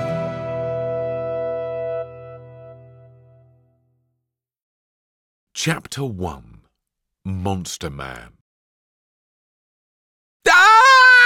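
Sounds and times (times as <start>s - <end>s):
speech: 5.6s - 6.6s, 7.2s - 8.4s
boy screaming in fright: 10.4s - 11.2s.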